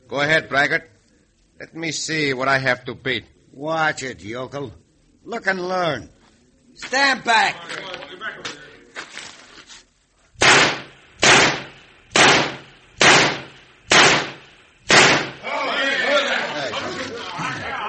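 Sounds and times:
speech: 0.1s - 0.9s, 1.6s - 6.2s, 6.8s - 8.5s
gunshots fired at a target in a shooting contest: 10.4s - 15.4s
murmur of voices: 15.3s - 17.8s.

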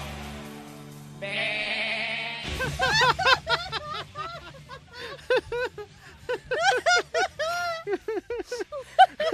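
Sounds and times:
goat bleating: 1.2s - 2.6s
laughter: 2.4s - 9.3s.

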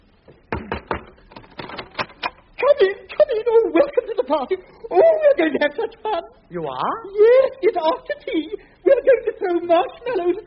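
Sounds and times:
knocking on a door: 0.5s - 1.1s
speech: 2.8s - 10.4s
laughter: 2.9s - 6.4s, 7.2s - 10.4s.

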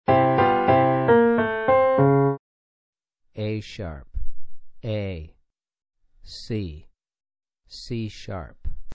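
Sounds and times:
four-note melodic piano phrase for ear training: 0.1s - 2.4s.

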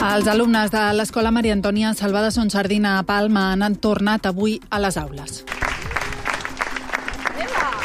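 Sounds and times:
speech: 0.1s - 5.5s
families and children clapping at a school protest: 5.5s - 7.8s.

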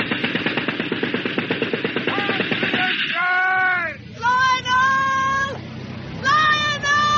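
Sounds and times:
machine gun burst fired from a motor torpedo boat: 0.0s - 3.2s
raised voices: 2.1s - 5.6s, 6.2s - 7.1s.

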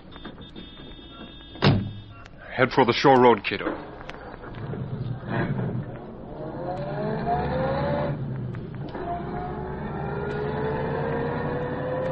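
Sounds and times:
speech: 2.6s - 3.9s
car engine starting and revving while pulling away from curb: 4.5s - 12.1s.

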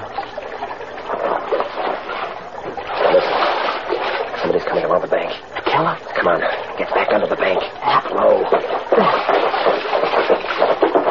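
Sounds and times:
water splashing and sloshing: 0.0s - 11.0s
body dropping into water with a splash: 1.0s - 4.4s, 8.4s - 11.0s.

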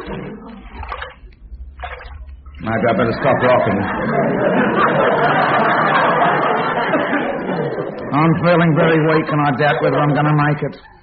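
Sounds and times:
water sloshing and gurgling: 0.0s - 5.6s
speech: 2.6s - 6.4s, 8.1s - 11.0s
laughter: 2.6s - 11.0s.

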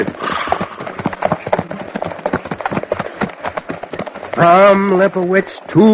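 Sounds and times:
harnessed horses' hooves clip-clopping: 0.0s - 5.9s
wooden wagon rattling and creaking: 0.0s - 5.9s
speech: 4.4s - 5.9s.

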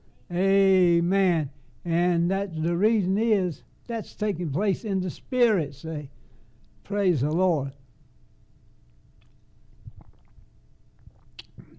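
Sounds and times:
speech: 0.3s - 6.2s, 6.9s - 7.8s
person sipping water: 9.2s - 11.7s
soft wet gulps and swallows of water: 9.2s - 11.7s.

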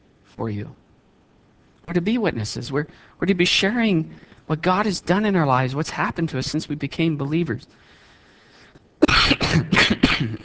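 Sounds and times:
speech: 0.4s - 0.8s, 1.9s - 7.9s, 9.5s - 10.4s
person coughing: 9.0s - 10.4s.

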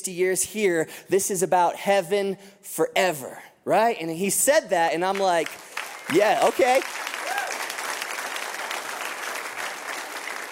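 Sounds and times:
speech: 0.0s - 7.1s
room full of people applauding: 5.1s - 10.4s.

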